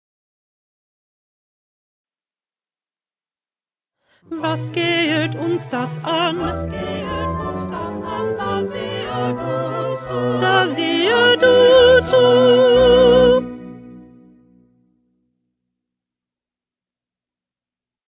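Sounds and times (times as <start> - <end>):
second alto part: 4.2 - 15.3.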